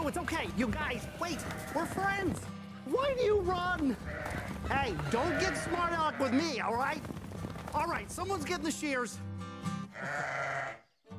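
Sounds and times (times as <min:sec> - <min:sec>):
speech: 0:00.1 - 0:09.3, 0:10.0 - 0:10.8
sheep bleating: 0:00.6 - 0:02.5, 0:03.7 - 0:07.0, 0:09.8 - 0:11.0.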